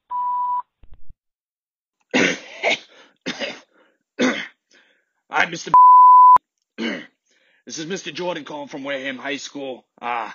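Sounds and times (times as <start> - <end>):
person clearing throat: 2.1 - 3.6, 4.2 - 4.6, 6.8 - 7.2
person coughing: 2.1 - 4.6, 6.8 - 7.2
speech: 5.3 - 5.9, 7.7 - 10.3
answering machine beep: 5.8 - 6.4.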